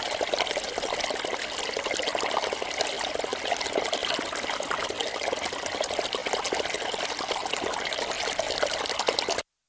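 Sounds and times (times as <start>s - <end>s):
fast-flowing stream gurgling over stones: 0.0s - 9.4s.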